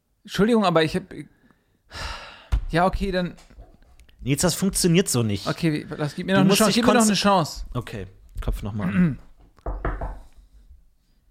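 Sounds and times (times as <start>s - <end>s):
faint room noise: 0.0s - 11.2s
speech: 0.2s - 2.1s, 2.7s - 3.5s, 4.2s - 9.3s
quick solid knocking on a door: 9.6s - 10.3s.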